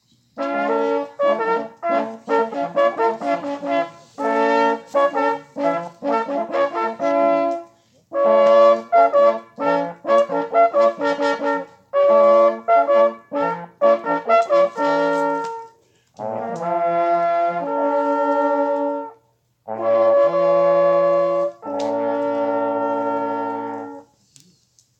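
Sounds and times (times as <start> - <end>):
hunting horn call: 0.4 - 24.2.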